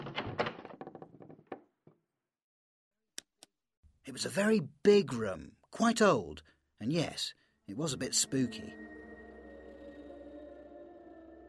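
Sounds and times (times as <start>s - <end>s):
door rattling and thumping open: 0.0s - 1.7s
speech: 4.1s - 8.9s.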